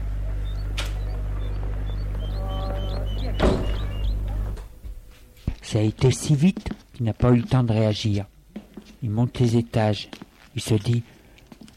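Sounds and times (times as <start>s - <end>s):
steady low hum: 0.0s - 11.6s
building door swinging shut with a solid thud: 3.2s - 5.1s
speech: 5.7s - 8.3s, 9.0s - 11.1s.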